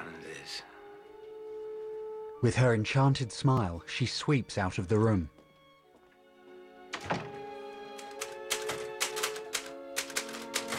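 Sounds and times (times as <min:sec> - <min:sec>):
speech: 0:02.4 - 0:05.4
typewriter keys clacking on a machine with a badly fading ribbon: 0:07.9 - 0:10.7.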